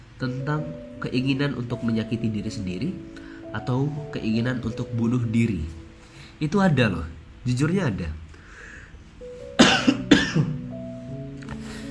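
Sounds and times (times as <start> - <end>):
faint steady hum: 0.0 - 11.8
speech: 0.2 - 5.8, 6.4 - 8.2
sharp raspy coughs: 9.6 - 10.6.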